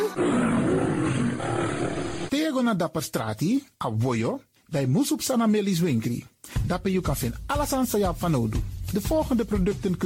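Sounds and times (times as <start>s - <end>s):
lion roaring: 0.0s - 2.3s
speech: 2.6s - 10.0s.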